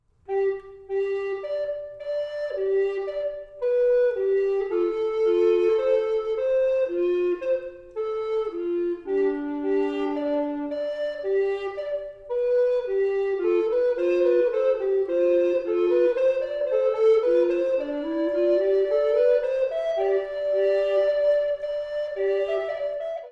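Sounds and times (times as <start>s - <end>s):
two tenor recorders playing: 0.3s - 23.3s.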